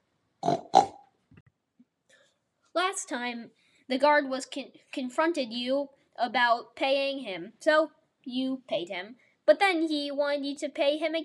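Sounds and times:
pig oinking: 0.4s - 1.0s
speech: 2.8s - 11.2s.

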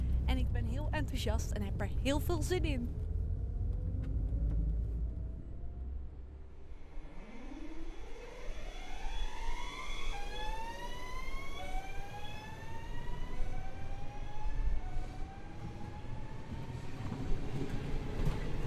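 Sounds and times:
rumble inside a moving car: 0.0s - 6.5s
rumble inside a moving commuter sprinter train: 0.0s - 7.3s, 11.3s - 18.6s
car engine whine accelerating: 0.0s - 18.6s
speech: 0.3s - 3.0s.

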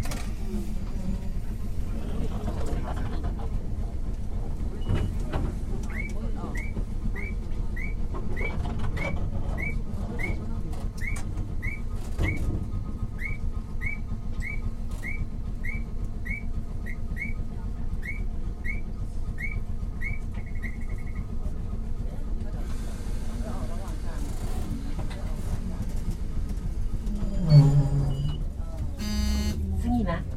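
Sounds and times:
old Mobo 101 type tram motor and wheels rumbling: 0.0s - 30.3s
short beeps inside an old tram: 29.0s - 29.6s.

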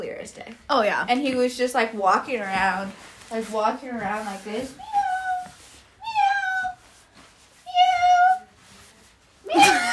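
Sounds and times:
speech: 0.2s - 4.9s
person imitating a cat meowing: 4.8s - 6.8s, 7.7s - 8.5s
burst of laughter or breathy noise: 9.5s - 9.9s.

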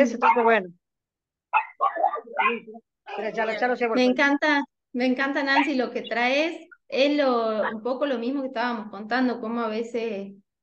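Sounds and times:
speech: 0.0s - 0.8s, 1.8s - 10.4s
small dog barking: 0.1s - 0.7s, 1.5s - 2.8s, 5.5s - 5.8s, 7.6s - 7.8s.

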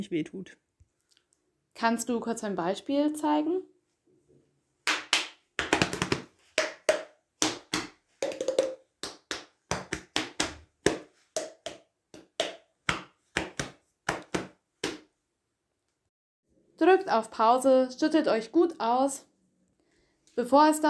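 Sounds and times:
speech: 0.0s - 0.7s, 1.8s - 3.7s, 16.8s - 19.3s, 20.4s - 20.8s
flat hand patting body in rhythmic body percussion: 4.9s - 15.1s.

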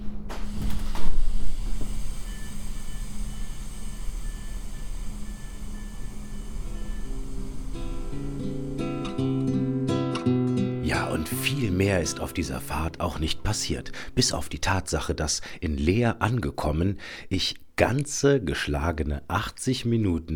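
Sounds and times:
Deutsche Bahn train standing at a station hissing and humming: 0.0s - 9.8s, 10.9s - 14.3s
layered ringing tones: 2.2s - 9.2s
speech: 11.2s - 20.3s.

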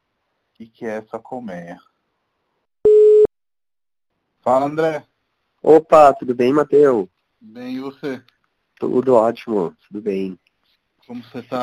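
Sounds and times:
speech: 0.6s - 1.9s, 4.5s - 10.4s, 11.1s - 11.6s
telephone call tone: 2.8s - 3.3s.

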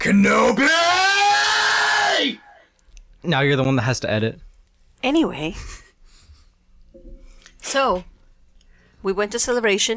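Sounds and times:
speech: 0.0s - 0.9s, 2.2s - 2.4s, 3.2s - 4.4s, 5.0s - 5.8s, 7.6s - 8.1s, 9.0s - 9.9s
person screaming in a theatrical villain style: 0.2s - 2.6s.

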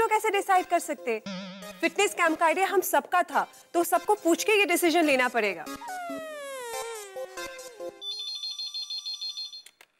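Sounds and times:
speech: 0.2s - 6.3s
phone ringtone with bright repeated electronic beeps: 5.8s - 9.8s.

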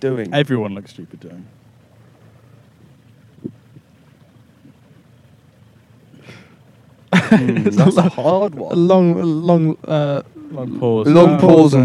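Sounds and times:
speech: 0.0s - 1.6s, 7.3s - 11.8s
steady low rumble of ambience aboard a boat: 0.0s - 11.8s
wind buffeting the microphone: 2.8s - 4.0s
laughter: 7.1s - 8.5s.

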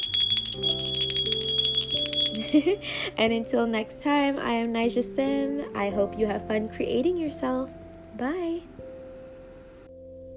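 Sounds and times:
bell ringing: 0.0s - 2.8s
soft pulsing shimmer: 0.0s - 2.8s
speech: 2.5s - 8.8s.

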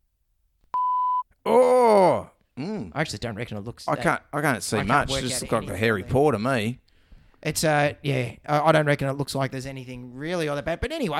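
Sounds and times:
electronic beep: 0.8s - 1.2s
speech: 3.0s - 6.8s, 7.4s - 11.1s.

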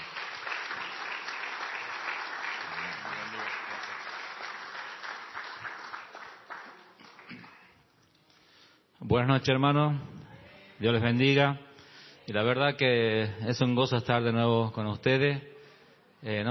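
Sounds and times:
crowd applauding a speaker at an evening gathering: 0.0s - 7.8s
speech: 9.1s - 10.1s, 10.8s - 11.6s, 12.3s - 15.5s, 16.2s - 16.4s.

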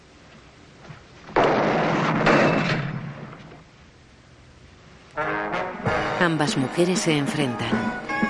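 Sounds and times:
metal gate slamming shut over a door: 1.4s - 3.3s
speech: 6.2s - 8.2s.

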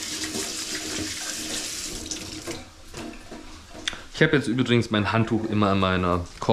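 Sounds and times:
water running from a kitchen tap: 0.0s - 4.3s
speech: 4.2s - 6.5s.

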